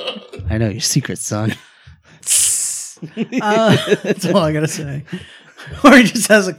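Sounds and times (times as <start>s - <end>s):
speech: 0.5s - 6.5s
voice imitating a spray bottle hiss: 2.2s - 3.0s
laughter: 3.0s - 6.2s.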